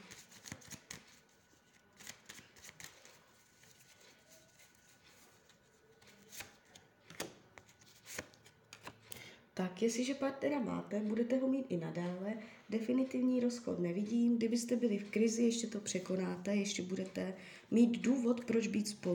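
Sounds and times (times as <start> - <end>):
tarot cards being shuffled and laid out on a table: 0.1 - 9.2
speech: 9.6 - 19.1.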